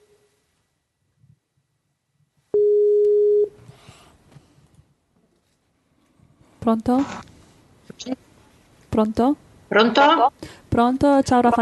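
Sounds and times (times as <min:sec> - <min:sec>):
telephone dial beeps: 0:02.5 - 0:03.5
speech: 0:06.7 - 0:07.3, 0:09.0 - 0:11.6.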